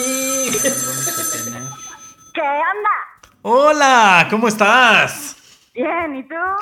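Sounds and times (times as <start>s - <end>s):
telephone ringing with a bright electronic trill: 0.0s - 2.6s
speech: 2.4s - 6.6s.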